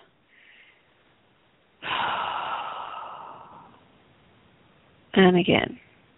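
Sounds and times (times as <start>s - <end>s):
person taking a deep breath and breathing out during a guided breathing exercise: 0.3s - 0.9s, 1.8s - 3.9s
speech: 5.2s - 5.8s.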